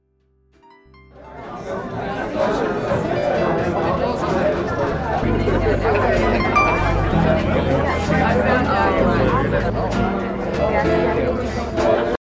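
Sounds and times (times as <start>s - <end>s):
jazzy music: 0.8s - 12.1s.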